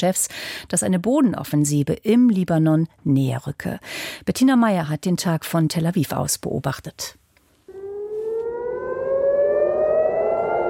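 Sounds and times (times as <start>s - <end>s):
speech: 0.0s - 7.2s
air raid siren wailing in the morning in Tel Aviv, Israel: 7.7s - 10.6s.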